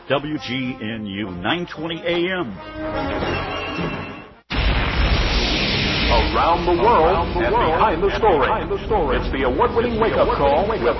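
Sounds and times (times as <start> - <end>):
speech: 0.1 - 4.1, 6.1 - 10.9
building collapsing: 3.1 - 10.9
rumbling roar of falling debris: 4.5 - 8.2.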